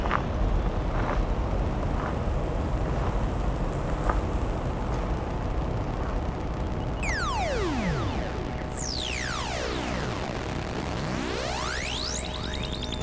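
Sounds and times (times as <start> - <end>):
dense steady outdoor rumble: 0.0 - 13.0
high whistling drone: 6.3 - 13.0
synthesizer tones sweeping steeply up and down: 6.7 - 13.0.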